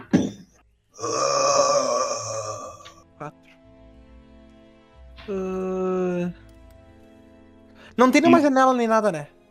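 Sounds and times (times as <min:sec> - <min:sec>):
speech: 0:01.0 - 0:01.3, 0:05.3 - 0:05.5, 0:08.0 - 0:09.4
drawn-out throaty groan-like vocal sound: 0:01.0 - 0:03.0.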